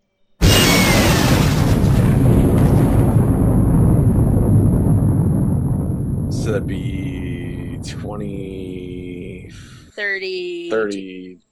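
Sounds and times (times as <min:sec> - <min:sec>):
fire breath attack sound effect roaring whoosh: 0:01.2 - 0:09.9
speech: 0:06.5 - 0:07.0, 0:10.0 - 0:11.4.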